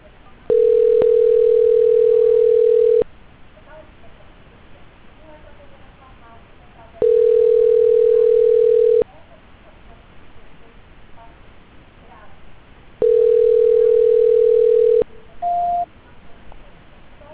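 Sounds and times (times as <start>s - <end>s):
telephone ringback tone during a call transfer: 0.5s - 3.0s, 7.0s - 9.0s, 13.0s - 15.8s
short high beep: 15.4s - 15.9s.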